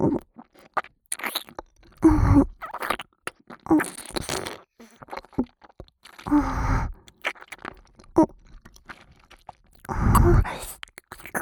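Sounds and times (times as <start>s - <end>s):
wet mouth sounds of chewing and swallowing: 0.2s - 11.4s.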